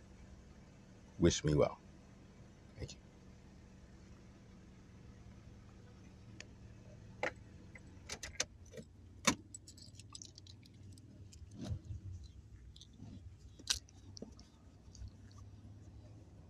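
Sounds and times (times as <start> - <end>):
low steady rumble: 0.0 - 16.4
speech: 1.2 - 1.8, 2.8 - 3.0
clicks and rustles of someone climbing out of a car: 7.2 - 16.0
metallic jingle of keys: 9.4 - 15.3.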